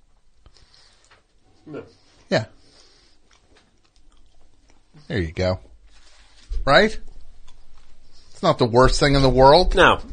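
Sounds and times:
chewing candy: 0.2 - 5.2, 7.1 - 8.4
speech: 1.7 - 2.6, 5.1 - 5.7, 6.6 - 7.1, 8.4 - 10.1.

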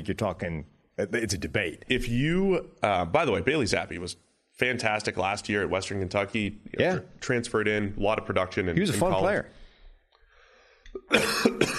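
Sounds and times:
speech: 0.0 - 9.6, 11.0 - 11.7
person coughing and clearing a troubled throat: 11.0 - 11.7.

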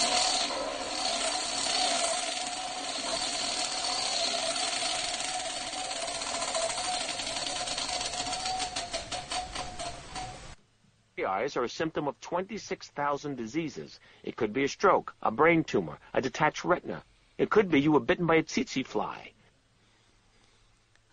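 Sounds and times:
steady noisy whirring: 0.0 - 17.8
prize wheel spinning: 1.2 - 10.6
speech: 11.4 - 19.4.

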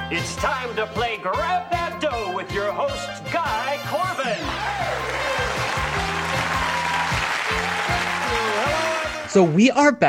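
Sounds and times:
speech: 0.1 - 5.8, 7.5 - 10.0
audience applause: 4.4 - 9.6.

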